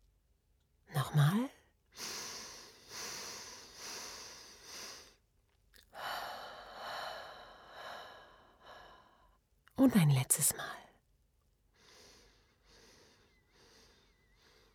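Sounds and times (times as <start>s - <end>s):
speech: 1.1s - 1.6s, 9.8s - 10.9s
slow deep breathing during a guided breathing exercise: 2.0s - 5.2s, 5.9s - 9.4s, 11.7s - 14.7s.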